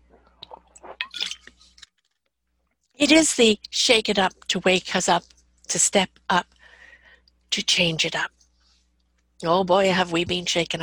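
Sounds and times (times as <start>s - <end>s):
person sipping and slurping water: 0.2s - 1.9s
speech: 3.0s - 6.5s, 7.5s - 8.4s, 9.4s - 10.8s.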